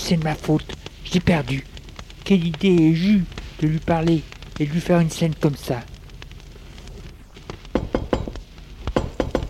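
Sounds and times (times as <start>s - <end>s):
speech: 0.0s - 1.7s, 2.3s - 5.9s
firm knocking on a door: 7.7s - 8.4s, 9.0s - 9.4s.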